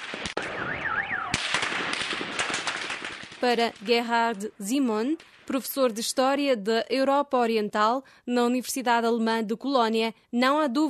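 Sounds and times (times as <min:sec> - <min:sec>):
explosive bangs during violent street clashes: 0:00.0 - 0:04.3
loud cracks: 0:00.0 - 0:04.4
warbling alarm: 0:00.4 - 0:01.4
speech: 0:03.4 - 0:10.8.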